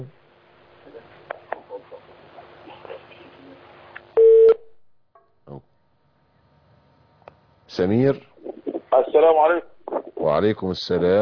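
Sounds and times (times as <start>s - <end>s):
speech: 0.0s - 0.2s, 7.8s - 8.3s, 9.1s - 11.1s
telephone line tone marking an incoming caller: 4.2s - 4.6s.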